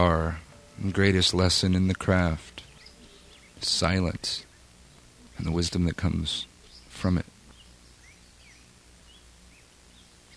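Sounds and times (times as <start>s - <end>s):
speech: 0.0s - 2.6s, 3.6s - 4.5s, 5.4s - 7.3s
steady hiss of outdoor ambience: 0.0s - 10.3s
faint high bird chirps: 2.0s - 5.7s, 6.3s - 10.3s.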